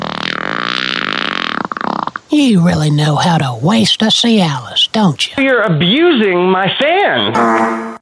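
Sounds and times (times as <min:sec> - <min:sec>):
long loud buzzing fart with sputtering pops: 0:00.0 - 0:02.3
speech: 0:02.3 - 0:07.9.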